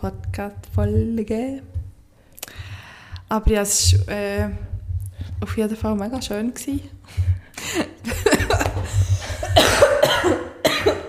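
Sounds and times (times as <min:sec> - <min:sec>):
speech: 0:00.0 - 0:01.8, 0:03.3 - 0:04.7, 0:05.4 - 0:08.3
brief chuckle: 0:07.5 - 0:10.0
harsh rough coughs: 0:08.4 - 0:11.0.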